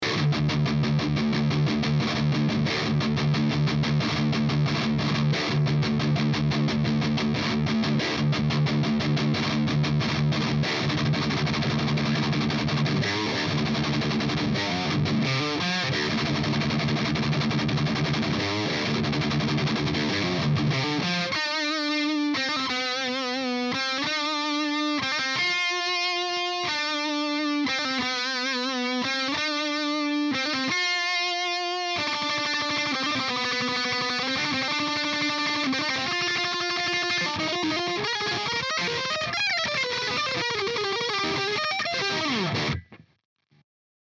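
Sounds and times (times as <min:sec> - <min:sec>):
distorted electric guitar through humbucker pickup: 0:00.0 - 0:43.2.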